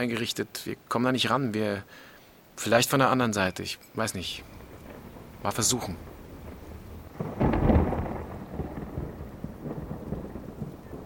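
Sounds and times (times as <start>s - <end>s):
speech: 0.0s - 4.6s, 5.4s - 6.1s
rain falling in a steady downpour: 0.0s - 11.0s
deep rumble of thunder: 4.4s - 11.0s.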